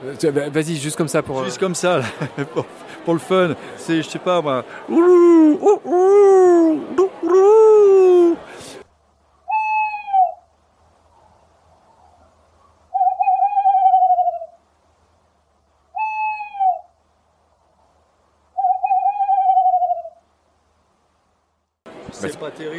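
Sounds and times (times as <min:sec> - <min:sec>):
speech: 0:00.0 - 0:08.5
laughter: 0:01.9 - 0:03.0
person imitating male tawny owl hoot: 0:04.9 - 0:08.5, 0:09.5 - 0:10.4, 0:13.0 - 0:14.6, 0:16.0 - 0:16.9, 0:18.6 - 0:20.2.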